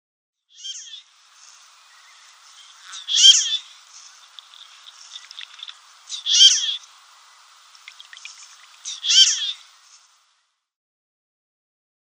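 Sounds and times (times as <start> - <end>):
male marbled teal giving high nasal squeaky calls: 2.9 - 3.6, 6.1 - 6.8, 8.8 - 9.6.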